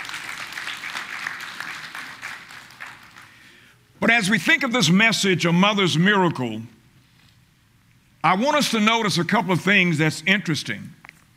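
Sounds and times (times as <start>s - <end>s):
audience applauding: 0.0s - 3.5s
speech: 4.1s - 6.8s, 8.2s - 11.0s.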